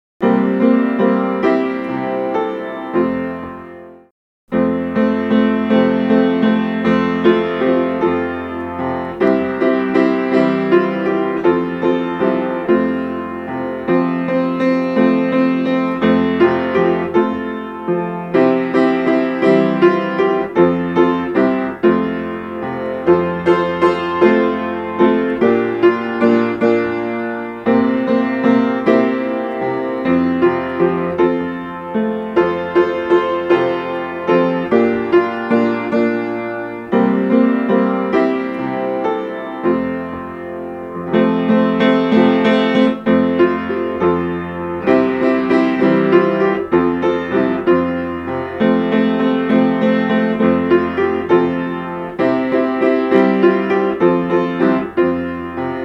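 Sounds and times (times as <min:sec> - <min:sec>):
piano hymn: 0:00.2 - 0:55.8.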